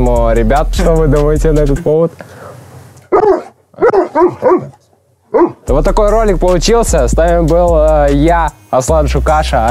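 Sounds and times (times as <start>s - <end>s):
speech: 0.1s - 2.4s, 3.1s - 9.6s
dog barking: 3.1s - 5.7s.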